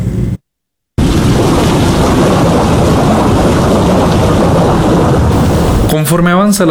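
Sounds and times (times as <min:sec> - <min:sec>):
heavy rain in a thunderstorm: 0:01.0 - 0:06.0
deep rumbling thunder: 0:01.0 - 0:06.1
speech: 0:06.0 - 0:06.6.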